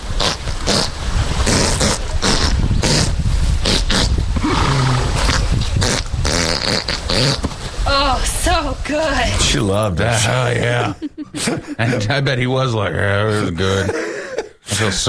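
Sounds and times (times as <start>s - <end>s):
horse passing gas: 0.0s - 7.9s
speech: 8.6s - 14.1s, 14.8s - 15.0s
laughter: 10.1s - 15.0s.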